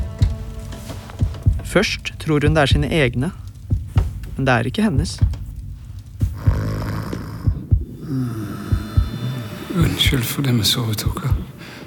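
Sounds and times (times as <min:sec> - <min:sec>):
deep heartbeat thumps: 0:00.0 - 0:10.3, 0:11.0 - 0:11.6
low steady hum: 0:00.0 - 0:11.6
speech: 0:01.7 - 0:03.4, 0:04.4 - 0:05.4, 0:09.8 - 0:11.4.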